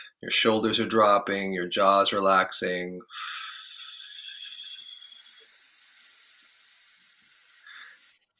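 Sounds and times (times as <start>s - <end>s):
speech: 0.2s - 3.5s
slow exhale through pursed lips during a relaxation breathing exercise: 5.4s - 8.2s.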